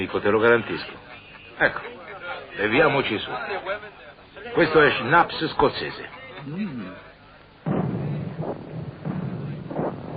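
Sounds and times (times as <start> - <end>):
speech: 0.0 - 1.0, 1.6 - 7.1
distant artillery cannon fire booms: 7.6 - 10.1.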